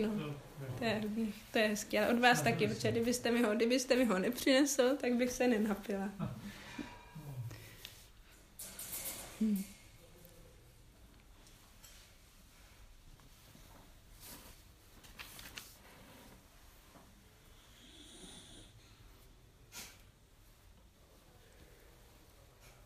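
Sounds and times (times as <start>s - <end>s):
speech: 0.0s - 6.4s, 9.4s - 9.7s
soft snoring from a sleeper: 17.4s - 19.1s.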